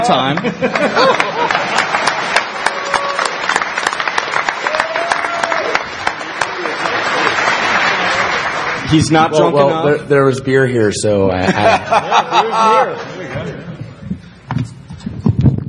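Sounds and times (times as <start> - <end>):
speech: 0.0 - 1.7, 8.9 - 13.5
laughter: 0.0 - 2.4, 6.3 - 9.8, 11.3 - 14.0
crowd applauding: 0.0 - 9.6.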